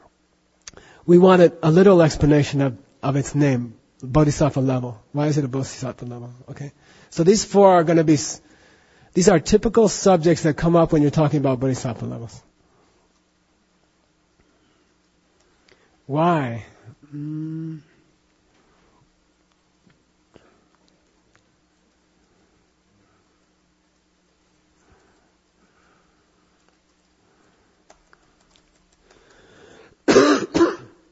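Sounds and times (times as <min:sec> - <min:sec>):
speech: 0:01.0 - 0:08.5, 0:09.2 - 0:12.5, 0:16.1 - 0:17.9
low voiced throat clearing: 0:30.1 - 0:31.0
sharp noisy cough: 0:30.1 - 0:31.1.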